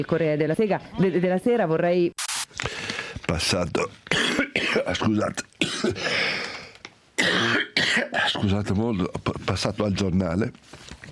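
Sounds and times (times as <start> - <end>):
speech: 0.0 - 2.2, 3.3 - 6.3, 8.3 - 11.0
man coughing in the middle of talking: 4.1 - 6.2, 7.2 - 8.5.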